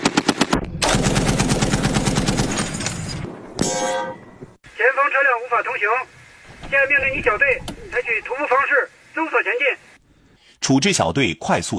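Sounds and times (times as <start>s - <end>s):
rapid automatic gunfire from a squad shooting from vehicles: 0.0s - 2.6s
speech: 5.0s - 9.9s, 10.6s - 11.7s.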